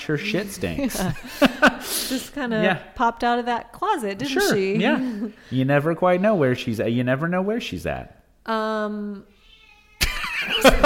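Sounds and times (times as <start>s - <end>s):
speech: 0.0s - 9.4s
laughter: 0.5s - 2.8s, 4.2s - 5.3s, 10.0s - 10.8s
female house cat meowing: 9.4s - 10.1s.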